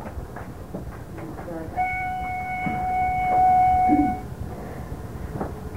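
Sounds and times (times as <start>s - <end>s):
synth lead melody: 1.7s - 4.3s.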